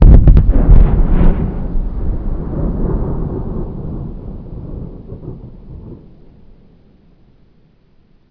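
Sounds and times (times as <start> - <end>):
mortar firing outdoors: 0.0 - 1.8.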